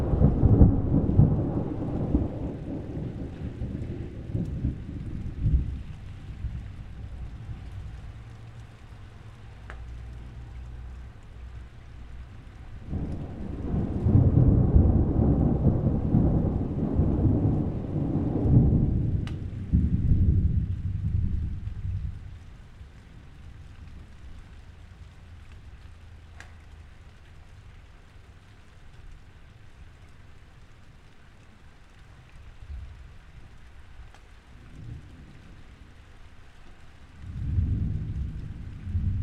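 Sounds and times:
deep thunder rolling in long low swells: 0:00.0 - 0:08.0, 0:12.8 - 0:24.2, 0:37.2 - 0:39.2
rain pattering through a thunderstorm: 0:00.0 - 0:39.2.

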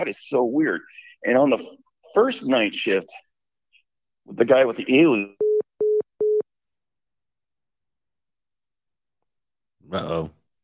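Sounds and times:
speech: 0:00.0 - 0:03.2, 0:04.3 - 0:05.4, 0:09.9 - 0:10.4
telephone line tone beeps after caller hung up: 0:05.4 - 0:06.4.

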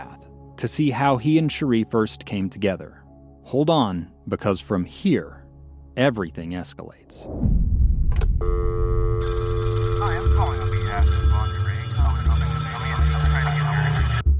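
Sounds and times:
speech: 0:00.6 - 0:05.4, 0:06.0 - 0:07.7
low rumbling bed: 0:07.2 - 0:09.5
telephone ringing with a bright electronic tone: 0:08.5 - 0:14.3.

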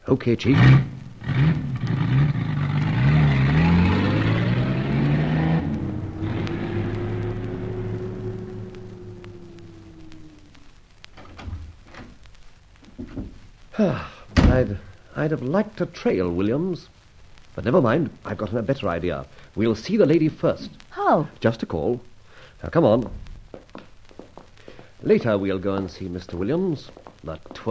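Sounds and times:
speech: 0:00.1 - 0:01.7, 0:15.3 - 0:17.0, 0:17.6 - 0:23.2, 0:25.0 - 0:27.6
car engine revving and pulling away: 0:00.4 - 0:11.8
faint clicks: 0:05.5 - 0:16.1, 0:16.8 - 0:27.6.

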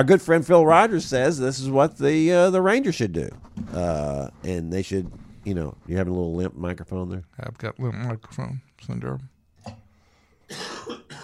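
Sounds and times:
speech: 0:00.0 - 0:09.8
person coughing: 0:10.5 - 0:11.2.

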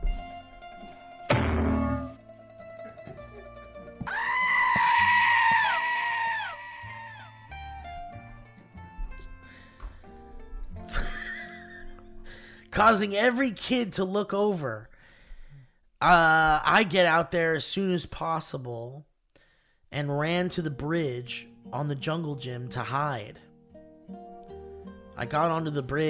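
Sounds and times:
thumps: 0:01.3 - 0:02.2
person screaming: 0:04.1 - 0:07.5
speech: 0:12.8 - 0:14.9, 0:16.0 - 0:19.1, 0:19.9 - 0:23.4, 0:25.2 - 0:26.0.

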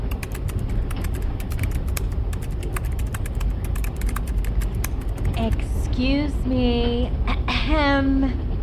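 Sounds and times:
passenger typing on a laptop keyboard on a train: 0:00.1 - 0:05.8
speech: 0:05.4 - 0:08.4.

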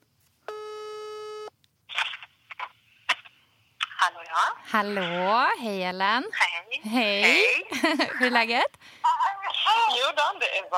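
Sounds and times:
phone ringback tone: 0:00.5 - 0:01.5
speech: 0:04.4 - 0:09.1, 0:09.9 - 0:10.7
laughter: 0:07.3 - 0:08.5.

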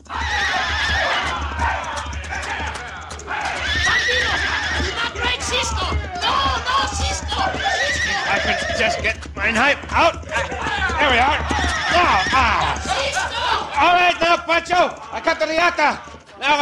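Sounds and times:
galloping horse hooves: 0:00.0 - 0:16.6
rough busy background: 0:00.0 - 0:16.6
horse whinnying: 0:00.1 - 0:01.8, 0:03.3 - 0:09.2, 0:10.8 - 0:13.8
speech: 0:08.8 - 0:12.8, 0:13.8 - 0:16.6.

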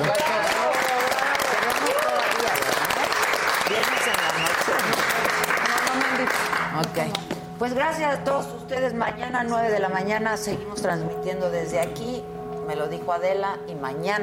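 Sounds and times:
audience applause: 0:00.0 - 0:06.7
speech: 0:07.6 - 0:14.2.

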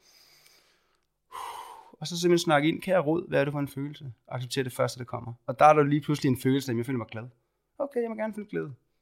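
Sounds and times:
loud rushing exhale: 0:00.0 - 0:02.0
soft airy inhale through the nose: 0:00.0 - 0:02.0
speech: 0:02.0 - 0:08.8.

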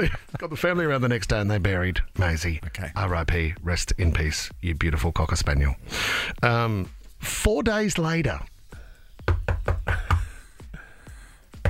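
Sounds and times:
speech: 0:00.0 - 0:08.5
firm knocks on a wooden door: 0:09.2 - 0:10.3.

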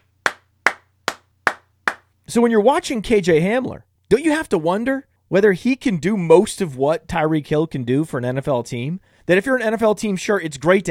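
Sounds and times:
crisp hand claps from a single person: 0:00.0 - 0:02.1
speech: 0:02.3 - 0:10.8.

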